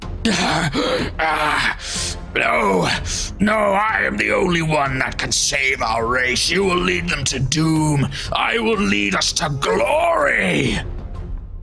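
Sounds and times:
speech: 0.2s - 10.9s
strained voice of a wounded figure gasping and wheezing: 0.3s - 2.3s.

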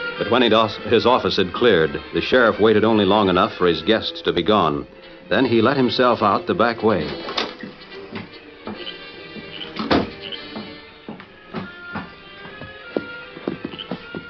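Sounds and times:
speech: 0.2s - 7.4s
horse hooves clip-clopping: 7.4s - 14.2s.

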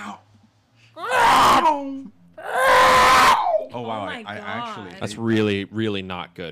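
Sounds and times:
person vocally imitating a TIE fighter starfighter shrieking roar: 1.0s - 3.8s
speech: 3.8s - 6.5s.

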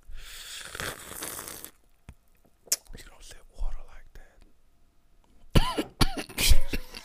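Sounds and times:
faint breathy whispering: 2.8s - 4.5s
throat clearing: 5.6s - 6.9s
person coughing after drinking something wrong: 5.6s - 7.0s.

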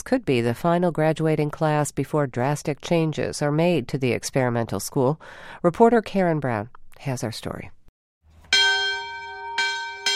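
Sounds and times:
speech: 0.1s - 7.8s
bell ringing outside a college library: 8.4s - 10.1s.

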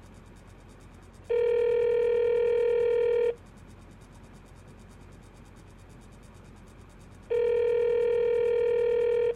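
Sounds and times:
electronic ringback tones over a telephone line calling the police department: 1.3s - 3.3s, 7.3s - 9.3s.

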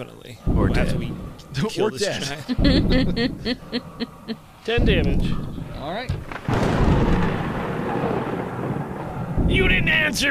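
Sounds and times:
speech: 0.0s - 7.2s, 9.5s - 10.2s
lightning thunder crack rolling into rumble: 0.5s - 1.5s, 2.6s - 3.4s, 4.7s - 10.2s
laughter: 1.6s - 4.4s.

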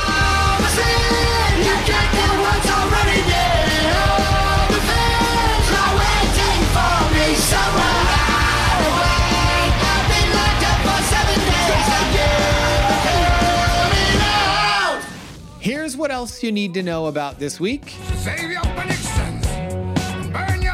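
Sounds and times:
pounding drums: 0.0s - 14.8s
loud dense metal song with yelled vocals: 0.0s - 15.3s
distorted guitars: 0.0s - 16.4s, 17.2s - 20.7s
speech: 16.0s - 18.9s.

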